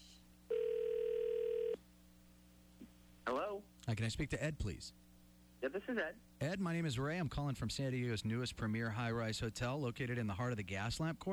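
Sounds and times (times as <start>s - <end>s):
faint hum: 0.0s - 11.3s
ringback tone on an old phone system during an outgoing call: 0.5s - 1.8s
speech: 3.6s - 5.0s, 5.6s - 11.3s.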